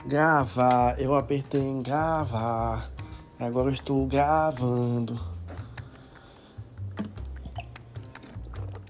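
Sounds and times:
speech: 0.1 - 5.3
person gulping and swallowing old water: 5.3 - 8.8.

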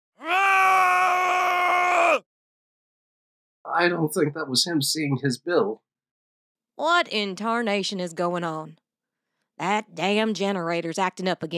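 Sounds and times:
man's blood-curdling scream: 0.2 - 2.3
speech: 3.8 - 5.9, 6.8 - 8.8, 9.6 - 11.5.

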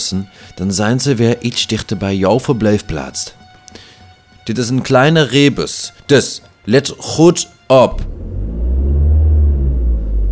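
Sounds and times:
speech: 0.1 - 3.8, 4.5 - 8.2
car engine revving: 7.9 - 10.3.

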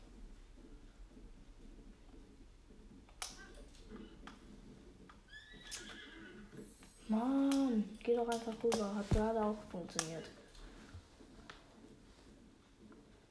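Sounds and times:
horse whinnying in a video game: 5.1 - 7.0
speech: 7.1 - 10.4.

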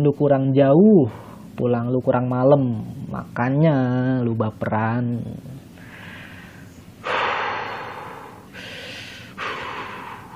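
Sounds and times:
speech: 0.0 - 5.6
deep airy breaths taken to calm down: 5.8 - 10.3.

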